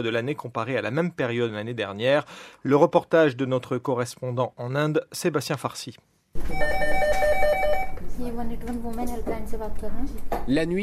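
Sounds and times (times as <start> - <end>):
speech: 0.0 - 6.8, 8.2 - 10.8
telephone ringing at a regional government helpline: 6.4 - 8.0.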